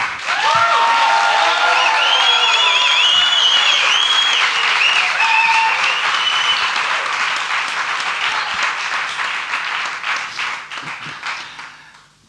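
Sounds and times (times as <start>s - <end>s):
large audience applause: 0.0s - 12.0s
audience cheers and whoops: 0.2s - 7.2s.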